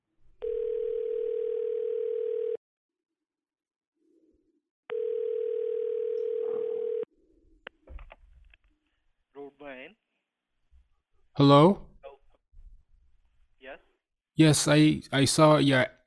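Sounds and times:
telephone ringback tone on a call line: 0.4s - 2.6s, 4.9s - 7.1s
speech: 9.6s - 10.0s, 11.4s - 11.8s, 13.7s - 16.0s.

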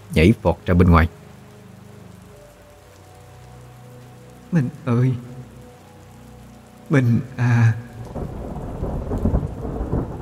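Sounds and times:
steady rain on a stormy night: 0.0s - 10.1s
speech: 0.1s - 1.2s, 4.5s - 5.3s, 6.9s - 8.4s
thunder rumbling on a rainy stormy night: 7.2s - 10.1s.

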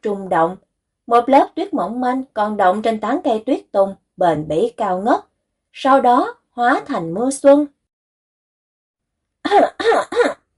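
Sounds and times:
speech: 0.0s - 7.8s, 9.5s - 10.4s
dry cough at a Buddhist holy site: 9.5s - 10.4s.

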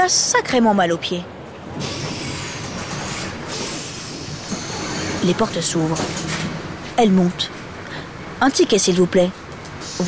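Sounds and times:
speech: 0.0s - 2.0s, 5.2s - 6.3s, 7.0s - 7.6s, 8.4s - 9.4s
bus engine and air rumble pulling in and stopping: 0.0s - 10.0s
bus hissing: 1.8s - 5.2s, 9.8s - 10.0s.

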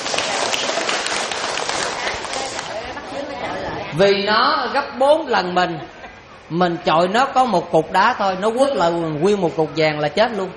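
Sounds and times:
audience applause at a Buddhist dharma talk: 0.0s - 2.9s
speech: 4.0s - 10.5s.

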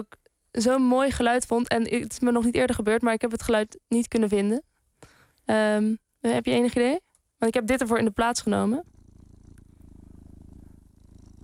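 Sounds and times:
speech: 0.0s - 4.7s, 5.5s - 8.9s
cat purring: 8.0s - 11.4s.

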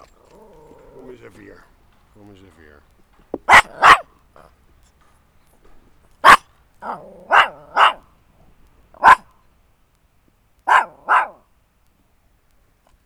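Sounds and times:
small dog barking: 0.0s - 9.4s, 10.6s - 11.5s
speech: 1.2s - 4.6s, 6.8s - 7.8s.

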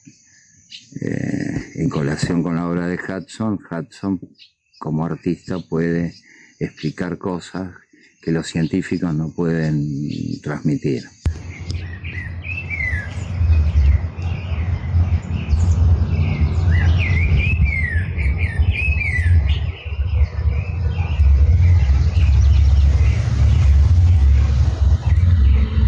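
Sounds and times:
several different birds singing and answering one another: 0.0s - 25.8s
speech: 1.8s - 11.2s
steady low rumble: 11.3s - 25.8s.

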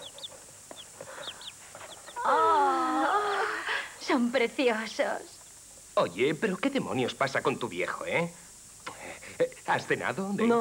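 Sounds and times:
young chickens cheeping: 0.0s - 2.2s
steady hiss: 0.0s - 10.5s
speech: 4.1s - 5.4s, 6.0s - 8.5s, 9.3s - 10.5s.

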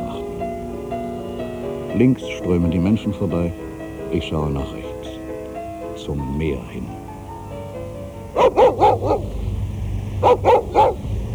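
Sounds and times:
stray dog barking: 0.0s - 1.1s, 7.7s - 11.3s
speech: 2.0s - 4.8s, 6.1s - 7.0s.

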